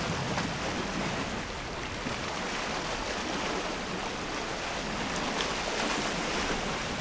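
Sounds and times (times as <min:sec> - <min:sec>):
Lake Michigan waves pounding against cliffs of fossil coral at Cave Point State Park: 0:00.0 - 0:06.9.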